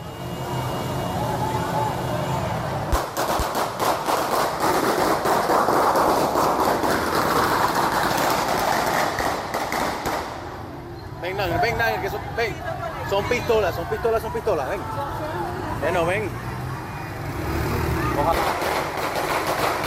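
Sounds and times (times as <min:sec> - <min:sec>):
outdoor noise: 0:00.0 - 0:19.8
pistol gunshots in the street: 0:02.9 - 0:07.1, 0:08.4 - 0:10.4, 0:18.3 - 0:19.8.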